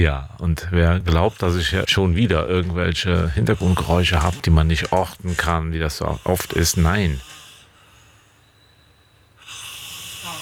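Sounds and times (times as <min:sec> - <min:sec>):
speech: 0:00.0 - 0:07.3
man snoring: 0:00.8 - 0:07.7, 0:09.4 - 0:10.3.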